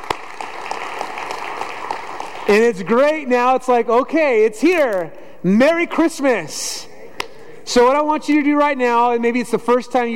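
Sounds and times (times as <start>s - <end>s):
audience applause: 0.0s - 2.7s
speech: 2.5s - 6.9s, 7.7s - 10.1s.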